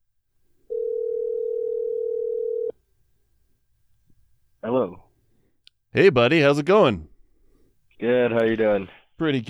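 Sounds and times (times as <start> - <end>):
telephone dial tone while placing a call: 0.7 - 2.8
speech: 6.0 - 7.1, 8.0 - 9.4.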